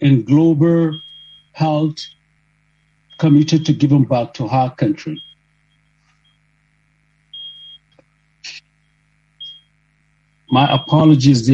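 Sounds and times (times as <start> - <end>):
speech: 0.0 - 1.0, 1.6 - 2.2, 3.2 - 5.3, 10.5 - 11.5
steady low hum: 0.0 - 11.5
high-pitched electronic beeps from a fire alarm in an office: 0.3 - 3.9, 5.0 - 6.4, 7.3 - 7.9, 9.4 - 9.8, 10.4 - 11.5.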